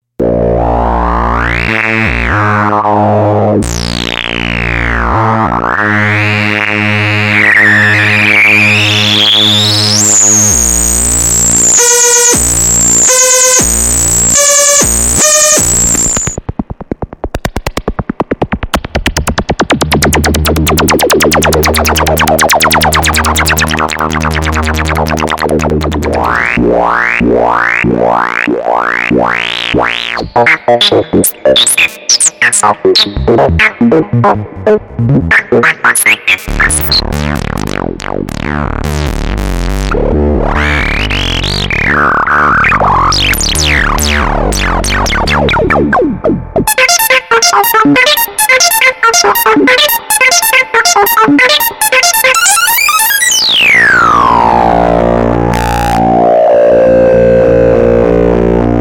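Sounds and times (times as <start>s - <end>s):
Polivoks VCF synthesizer filter: 0.2s - 58.7s.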